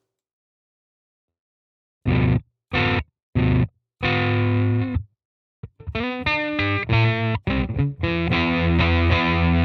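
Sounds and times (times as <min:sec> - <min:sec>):
electric guitar through a fuzz pedal into a clean amp: 0:02.1 - 0:05.0, 0:05.6 - 0:09.6.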